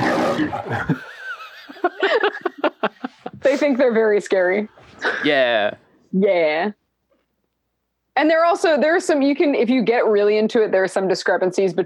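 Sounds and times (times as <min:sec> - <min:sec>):
person imitating a lion's roar: 0:00.0 - 0:01.0
speech: 0:00.4 - 0:01.1, 0:01.8 - 0:02.5, 0:03.4 - 0:06.8, 0:08.2 - 0:11.8
laughter: 0:00.4 - 0:04.2.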